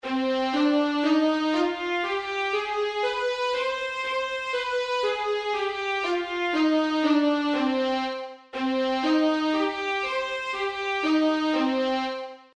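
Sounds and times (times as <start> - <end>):
harmonic minor scales: 0.0 - 12.5.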